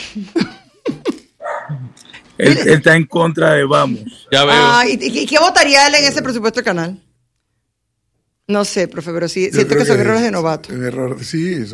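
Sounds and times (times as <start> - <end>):
speech: 0.2 - 0.6, 1.7 - 7.0, 8.5 - 11.7
dog barking: 1.4 - 1.9.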